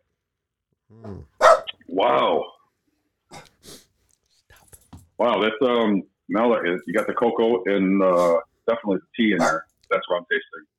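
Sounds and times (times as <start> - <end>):
speech: 0.9 - 1.3, 2.0 - 2.5, 5.2 - 10.7
dog whining, growling and barking: 0.9 - 1.7.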